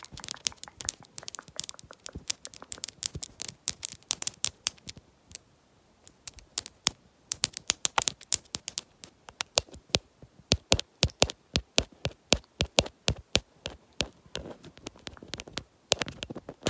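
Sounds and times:
long nails tapping on a hard lens: 0.0s - 5.4s, 6.1s - 16.6s.

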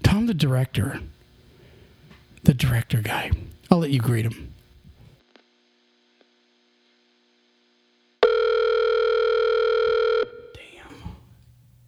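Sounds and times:
speech: 0.2s - 1.2s, 2.4s - 4.5s
phone line noise: 8.2s - 10.6s
telephone dial tone while placing a call: 8.2s - 10.6s.

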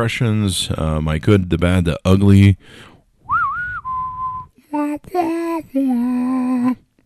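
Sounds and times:
speech: 0.0s - 2.9s, 5.0s - 6.8s
person whistling loudly into the microphone: 3.3s - 4.5s.

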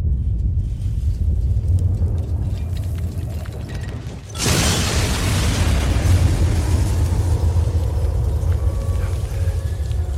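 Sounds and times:
low rumble: 0.0s - 10.1s
massive explosion of a bomb blowing up a city in a video game: 4.3s - 10.0s
roar of debris and rumbling: 4.3s - 10.1s.

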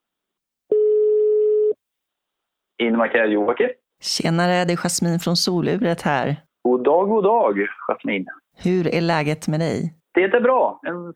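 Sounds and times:
telephone ringback tone of outgoing call: 0.7s - 1.8s
speech: 2.8s - 11.1s.

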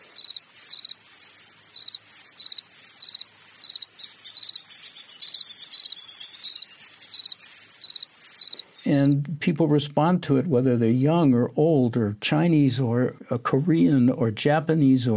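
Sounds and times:
cricket chirping: 0.0s - 9.1s
speech: 8.9s - 15.1s.

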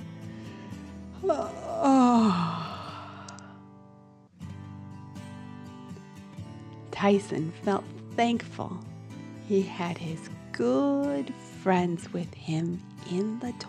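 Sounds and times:
speech: 1.2s - 2.5s, 7.0s - 8.9s, 9.5s - 13.6s
big drawn-out yawn: 1.2s - 3.6s.

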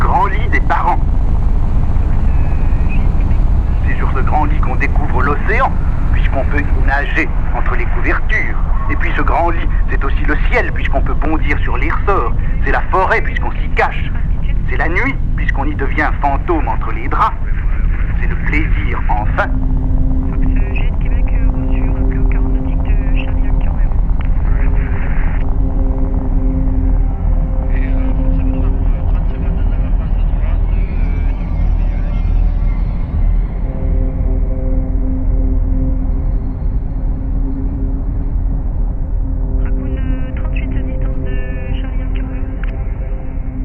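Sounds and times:
faint voices: 0.0s - 1.0s, 2.0s - 19.6s, 20.2s - 25.5s, 27.6s - 33.8s, 39.6s - 43.6s
helicopter engine and rotor drone: 0.0s - 43.6s
speech: 10.2s - 17.5s, 18.3s - 19.7s.

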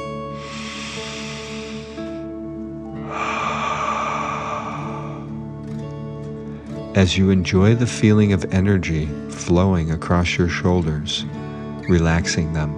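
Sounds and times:
soft steady musical drone: 0.0s - 8.3s
deep breath in and out during a guided relaxation exercise: 0.2s - 5.8s
speech: 7.0s - 12.7s.

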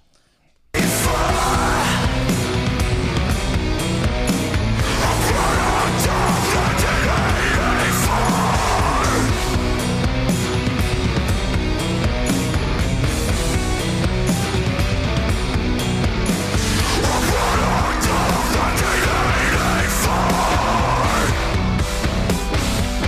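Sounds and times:
metal vocalist screaming in harsh bursts: 0.8s - 2.7s, 4.8s - 9.8s, 16.7s - 21.6s
loud dense distorted metal band playing: 0.8s - 23.0s.

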